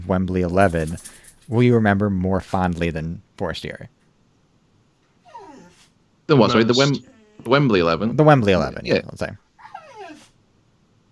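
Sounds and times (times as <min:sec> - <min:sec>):
speech: 0:00.1 - 0:04.0, 0:06.3 - 0:09.4
dog whimpering: 0:05.2 - 0:05.9, 0:06.5 - 0:07.4, 0:09.6 - 0:10.4.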